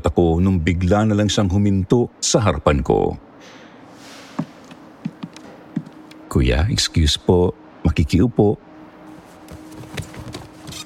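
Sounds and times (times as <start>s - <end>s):
hiss: 0.0s - 10.8s
speech: 0.1s - 3.3s, 6.3s - 8.6s
woman's footsteps walking on a bus: 4.1s - 6.2s, 9.1s - 10.8s.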